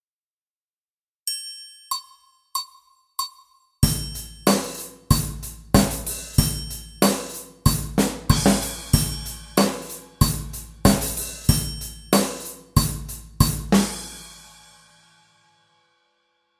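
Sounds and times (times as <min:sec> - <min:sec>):
two-beat music: 0:01.9 - 0:14.2.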